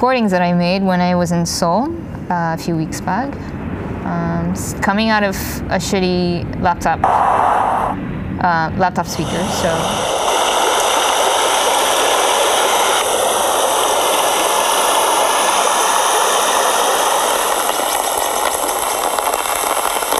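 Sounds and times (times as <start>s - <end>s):
speech: 0.0s - 10.1s
faint watery rush: 9.2s - 20.1s
steady dense rain pattering on an umbrella overhead: 13.0s - 20.1s.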